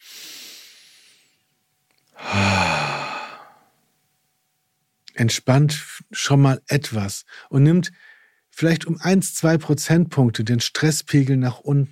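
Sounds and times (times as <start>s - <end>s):
person breathing deeply to calm down: 0.0s - 1.4s, 2.2s - 3.7s
loud drawn-out exhale turning into a voiced sigh: 2.2s - 3.7s
speech: 5.2s - 11.9s.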